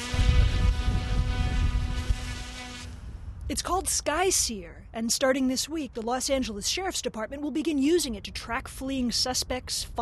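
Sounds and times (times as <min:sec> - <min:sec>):
small surveillance drone motor buzz: 0:00.0 - 0:03.2
low rumbling wind-like background: 0:00.0 - 0:10.0
speech: 0:03.5 - 0:10.0.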